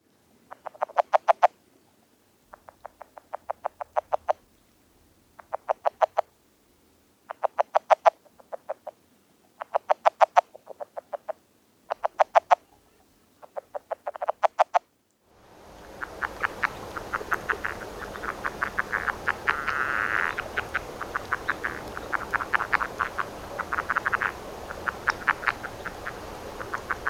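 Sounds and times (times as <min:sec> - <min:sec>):
northern red-legged frog calling: 0:00.5 - 0:01.6, 0:02.5 - 0:04.5, 0:05.3 - 0:06.4, 0:07.3 - 0:09.0, 0:09.6 - 0:14.9, 0:15.7 - 0:27.0.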